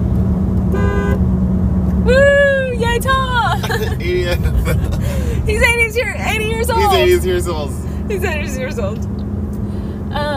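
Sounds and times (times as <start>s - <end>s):
low rumble of the car's engine: 0.0s - 10.3s
road noise from a moving car: 0.0s - 10.3s
car horn honk from a moving car: 0.7s - 1.2s
laughter: 3.4s - 5.6s
speech: 3.9s - 9.1s.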